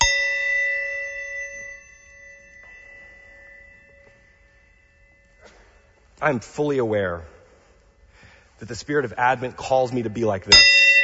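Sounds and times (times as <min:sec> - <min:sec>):
small bell in an office ringing: 0:00.0 - 0:06.1, 0:10.5 - 0:11.0
speech: 0:06.2 - 0:07.3, 0:08.6 - 0:10.7.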